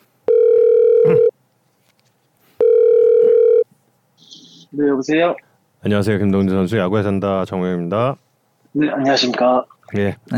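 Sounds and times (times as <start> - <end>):
telephone ringback tone: 0.3 - 1.3, 2.6 - 3.6
speech: 4.8 - 10.3.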